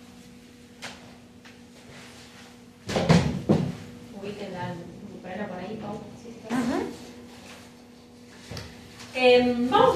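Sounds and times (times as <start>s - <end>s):
chairs picked up and sat on by students in a singing class: 2.9s - 3.9s
speech: 4.3s - 6.9s, 9.2s - 9.9s.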